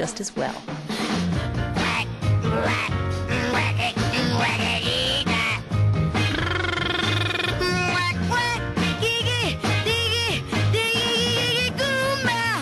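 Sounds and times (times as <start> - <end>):
driving beat, bass and full band backing: 0.9 - 12.6
brassy upbeat 1960s-style novelty girl-group pop song recorded in 1965: 7.6 - 12.6.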